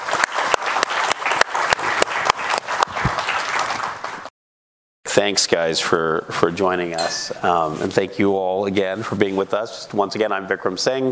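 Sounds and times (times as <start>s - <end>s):
crowd applauding with dense overlapping claps: 0.0s - 4.3s
speech: 5.2s - 11.0s.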